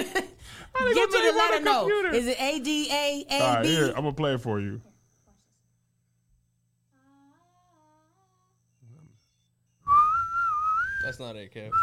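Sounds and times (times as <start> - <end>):
speech: 0.0 - 4.9, 11.1 - 11.8
person whistling a four-note tune: 9.8 - 11.8.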